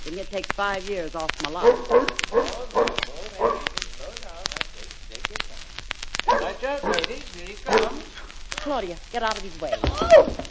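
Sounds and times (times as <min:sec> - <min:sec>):
speech: 0:00.1 - 0:03.6, 0:07.4 - 0:10.4
large lion-like dog barking: 0:01.5 - 0:03.9, 0:06.2 - 0:08.3.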